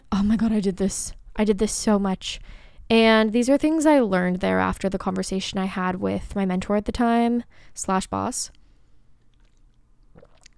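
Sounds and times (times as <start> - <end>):
faint room rumble: 0.0 - 10.5
speech: 0.2 - 8.6
sipping water from a tumbler: 8.5 - 10.5
swallow: 9.2 - 10.5.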